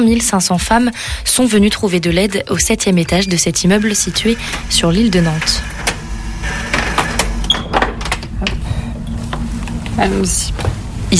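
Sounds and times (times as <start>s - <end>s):
speech: 0.0s - 5.7s, 10.0s - 11.1s
low steady rumble: 0.0s - 11.1s
heavy security door opening at a support center in a building on the Île de Nantes: 3.4s - 9.9s.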